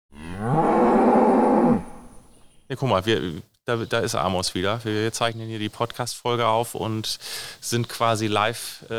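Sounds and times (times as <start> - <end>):
cow mooing while calving: 0.1 - 2.7
speech: 2.7 - 8.9.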